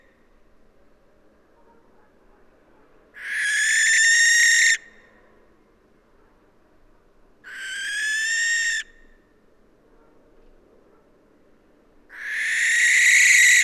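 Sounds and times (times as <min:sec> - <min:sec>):
barn owl Tyto alba hoarse noisy screech: 0:03.2 - 0:04.8, 0:07.5 - 0:09.0, 0:12.1 - 0:13.6.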